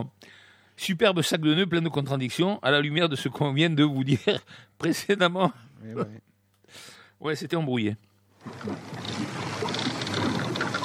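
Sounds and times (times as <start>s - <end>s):
speech: 0.0s - 9.9s
old wooden ship creaking and groaning: 8.4s - 10.8s
steady wash of water: 8.4s - 10.8s.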